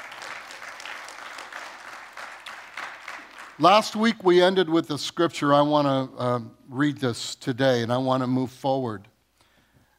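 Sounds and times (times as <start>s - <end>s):
room full of people clapping: 0.0s - 4.0s
speech: 3.6s - 9.1s.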